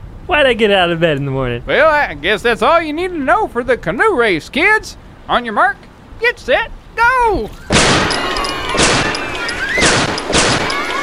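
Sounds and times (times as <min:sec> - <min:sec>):
speech: 0:00.3 - 0:08.4
gunfire bursts shooting holes in canoes: 0:07.7 - 0:11.0.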